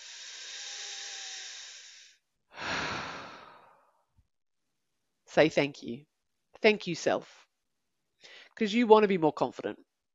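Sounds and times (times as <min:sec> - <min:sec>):
person taking long soft breaths: 0:00.0 - 0:04.1, 0:08.2 - 0:08.6
speech: 0:05.3 - 0:07.4, 0:08.2 - 0:09.9.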